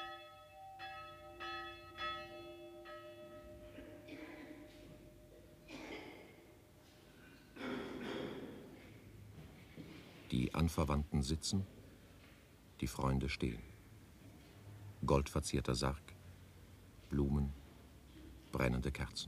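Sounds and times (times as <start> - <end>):
funeral death bell tolling at a cemetery outside Sopron Hungary: 0.0 - 6.9
murmur of noise: 3.3 - 19.2
speech: 10.3 - 11.8, 12.8 - 13.7, 15.0 - 16.2, 17.1 - 17.6, 18.5 - 19.2.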